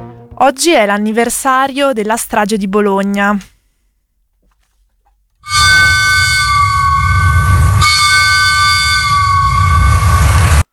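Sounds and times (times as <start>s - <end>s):
speech: 0.4s - 3.5s
commemorative train whistle blasts: 5.4s - 10.6s.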